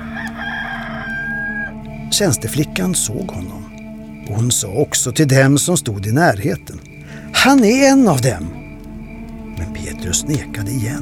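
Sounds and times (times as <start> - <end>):
rooster crowing: 0.0 - 2.0
speech: 2.1 - 3.7, 4.3 - 8.6, 9.6 - 10.9.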